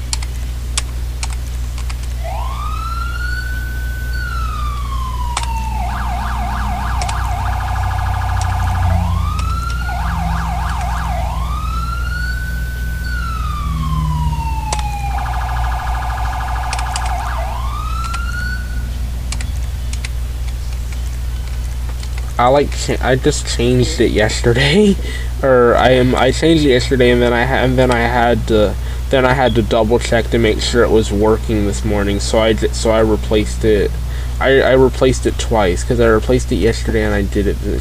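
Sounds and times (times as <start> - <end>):
low engine hum: 0.0 - 37.7
video game emergency siren wailing and yelping: 2.1 - 20.1
faint keyboard clicks: 6.8 - 7.4, 16.2 - 17.4, 18.0 - 18.4, 19.3 - 22.4
speech: 22.4 - 37.7
laughter: 23.6 - 25.3.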